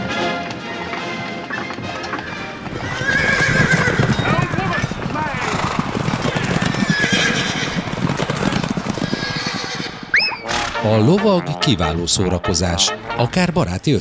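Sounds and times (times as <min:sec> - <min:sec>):
hooves clip-clopping: 0:00.4 - 0:11.8
horse neighing: 0:02.1 - 0:12.0
speech: 0:10.9 - 0:13.9.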